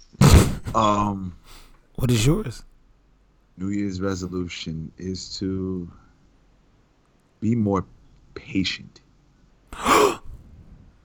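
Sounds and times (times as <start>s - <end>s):
speech: 0.7s - 2.7s, 3.6s - 6.0s, 7.4s - 9.0s
sharp gasp for air: 9.8s - 10.7s.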